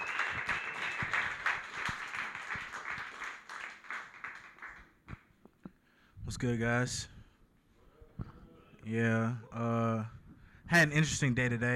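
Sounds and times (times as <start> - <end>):
crowd clapping: 0.0 - 5.3
speech: 6.3 - 7.1, 8.9 - 11.7.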